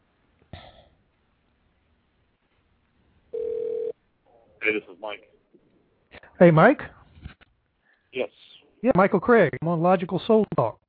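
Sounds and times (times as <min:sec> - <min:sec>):
quiet telephone line hiss: 0:03.3 - 0:03.9
loud steady telephone ringing tone: 0:03.3 - 0:04.0
speech: 0:04.7 - 0:05.4, 0:06.4 - 0:07.0, 0:08.2 - 0:10.8.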